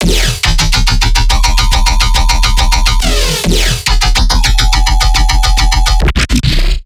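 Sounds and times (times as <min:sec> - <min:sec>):
riddim bass loop in E: 0:00.0 - 0:06.2.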